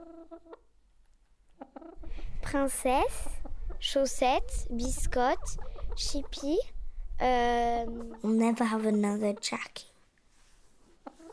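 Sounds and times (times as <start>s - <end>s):
speech: 0.4s - 0.8s, 2.5s - 9.9s
domestic hens clucking: 1.5s - 6.6s, 7.3s - 9.6s, 11.0s - 11.3s.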